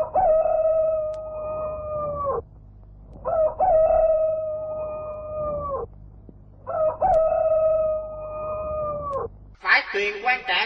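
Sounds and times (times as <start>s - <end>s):
rooster crowing by a river: 0.0s - 2.4s, 3.2s - 5.9s, 6.6s - 9.3s.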